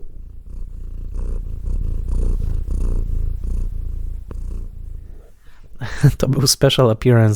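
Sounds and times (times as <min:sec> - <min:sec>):
female domestic cat purring: 0:00.0 - 0:07.3
speech: 0:06.0 - 0:07.3.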